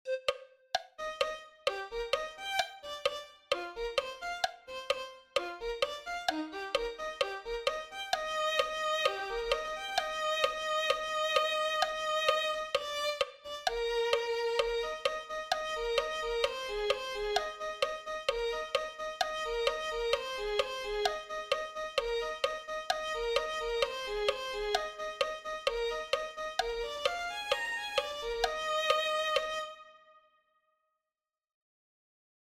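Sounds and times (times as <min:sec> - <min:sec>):
violin playing: 0:00.0 - 0:30.2.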